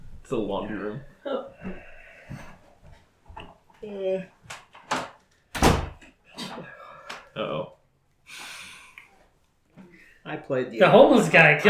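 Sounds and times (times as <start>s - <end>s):
speech: 0.3s - 2.4s, 3.8s - 4.4s, 7.4s - 7.7s, 10.3s - 11.6s
door pushed shut with a solid thud: 4.8s - 6.0s.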